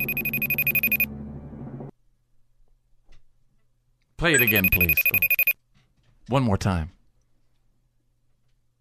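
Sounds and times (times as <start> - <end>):
Apple FaceTime call ringtone chime: 0.0 - 1.1, 4.4 - 5.6
speech: 4.2 - 5.4, 6.3 - 7.0.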